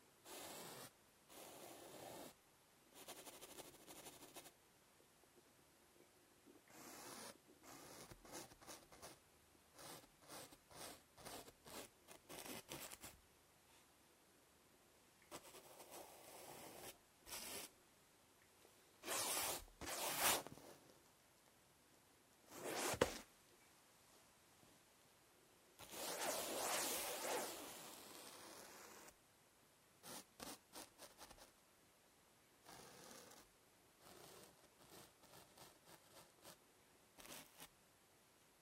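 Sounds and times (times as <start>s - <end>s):
sketching: 0.2s - 4.6s, 6.7s - 13.2s, 15.3s - 17.8s, 19.0s - 21.0s, 25.8s - 29.1s, 30.0s - 31.6s, 32.6s - 36.6s, 37.2s - 37.7s.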